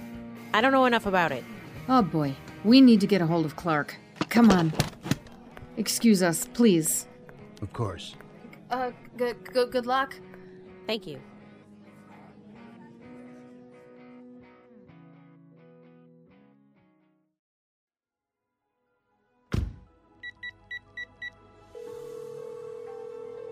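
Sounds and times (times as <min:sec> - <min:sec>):
music: 0:00.0 - 0:17.4, 0:18.5 - 0:23.5
speech: 0:00.5 - 0:04.9, 0:05.8 - 0:10.3, 0:10.9 - 0:11.3
thud: 0:19.5 - 0:19.9
telephone ringing tone on an outgoing call: 0:20.3 - 0:23.5.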